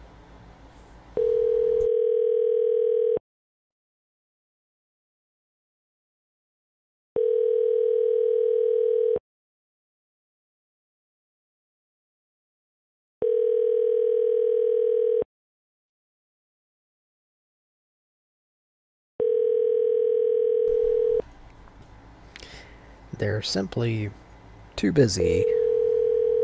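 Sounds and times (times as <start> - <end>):
telephone ringback tone for an unanswered call: 1.2 - 3.2, 7.2 - 9.2, 13.2 - 15.3, 19.2 - 21.2, 25.3 - 26.4
speech: 23.2 - 24.2, 24.8 - 25.6.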